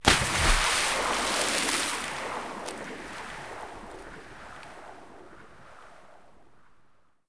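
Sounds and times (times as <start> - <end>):
object entering water: 0.0 - 3.6.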